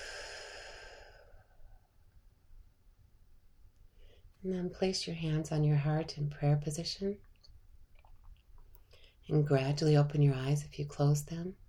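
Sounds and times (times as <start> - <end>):
deep breathy exhale during a guided breathing exercise: 0.0 - 1.9
speech: 4.4 - 7.3, 9.3 - 11.6.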